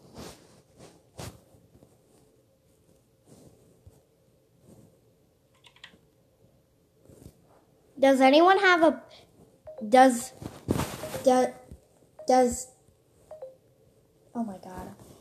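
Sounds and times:
typing a chat message on a computer keyboard: 5.5 - 6.0
speech: 8.0 - 9.2, 9.8 - 10.5, 11.2 - 11.6, 12.3 - 12.7.

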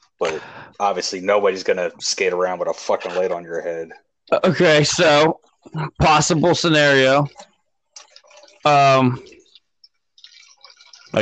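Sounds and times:
speech: 0.2 - 7.5, 8.6 - 9.4
water pouring into a bottle: 6.1 - 11.2.

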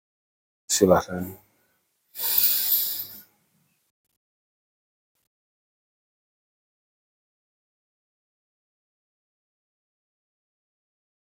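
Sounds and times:
speech: 0.7 - 1.4
deep slow breath drawn in through the nose: 2.2 - 3.3.

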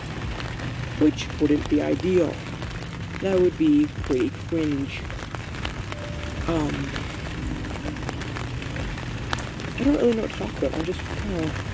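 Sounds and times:
steady rain falling: 0.0 - 11.7
speech: 1.0 - 2.5, 3.2 - 5.1, 6.5 - 7.2, 9.8 - 11.7
faint tonal sound: 5.9 - 9.8.

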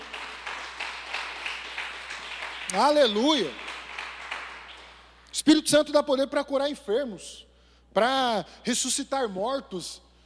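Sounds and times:
crowd applauding: 0.0 - 5.2
speech: 2.7 - 3.6, 5.4 - 10.0.

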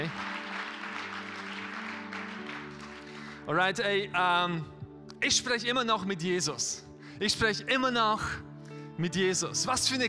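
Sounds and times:
crowd applause in church: 0.0 - 3.4
speech: 3.5 - 10.0.

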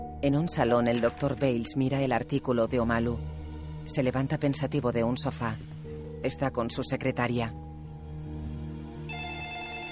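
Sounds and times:
speech: 0.2 - 7.7
telephone ringing with electronic tone: 9.1 - 9.8.

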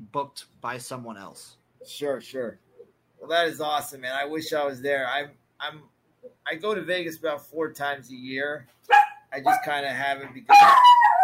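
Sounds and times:
speech: 0.1 - 2.6, 3.2 - 10.9
dog howling: 10.5 - 11.2.

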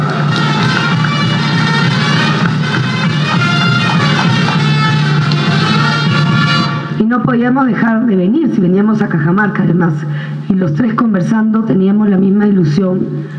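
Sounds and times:
large outdoor crowd applauding in town square: 0.0 - 6.8
speech: 7.2 - 13.3.

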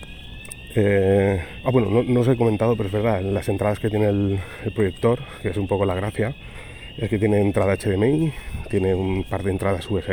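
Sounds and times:
high electronic tone: 0.0 - 10.1
loud flat buzzing alarm: 0.0 - 10.1
speech: 0.8 - 10.1.

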